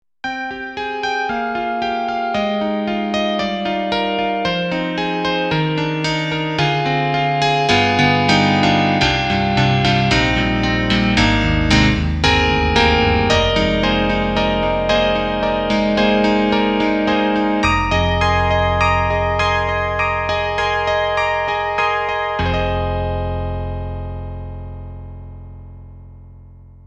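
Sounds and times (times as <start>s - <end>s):
synthesizer grand piano tone: 0.2s - 26.8s.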